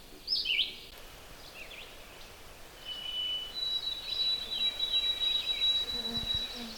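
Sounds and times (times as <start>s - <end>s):
red-eyed vireo whistled song: 0.0s - 6.7s.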